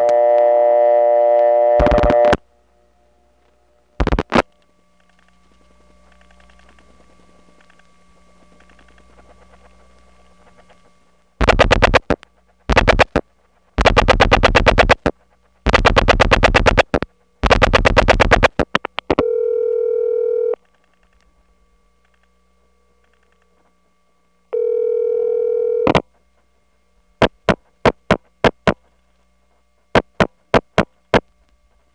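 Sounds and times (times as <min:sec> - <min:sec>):
harsh crackly buzzing bursts on telephone line: 0:00.0 - 0:31.9
telephone ringback tone over analog wire cable trunk: 0:19.2 - 0:20.6, 0:24.5 - 0:26.0.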